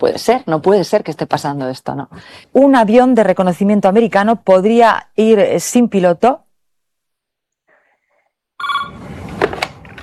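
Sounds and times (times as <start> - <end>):
speech: 0.0 - 6.4
telephone bell ringing: 8.6 - 9.2.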